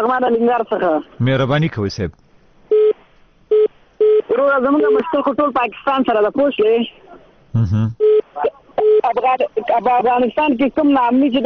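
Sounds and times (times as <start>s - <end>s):
speech: 0.0s - 2.2s, 4.3s - 11.4s
telephone call-in line tone after a dropped call: 2.7s - 5.0s, 8.0s - 9.2s.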